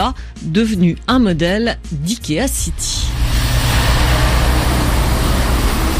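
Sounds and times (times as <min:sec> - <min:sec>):
speech: 0:00.0 - 0:03.2
trucks passing through a small town: 0:03.0 - 0:05.9.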